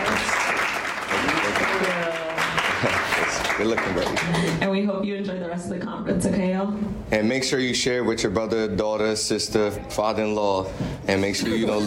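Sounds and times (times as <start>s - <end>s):
audience applause: 0.0s - 4.6s
speech: 3.6s - 11.8s.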